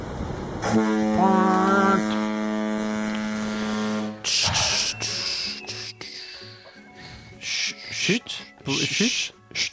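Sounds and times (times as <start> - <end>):
deep foghorn blast: 0.5 - 4.8
speech: 0.7 - 1.5, 9.0 - 9.4.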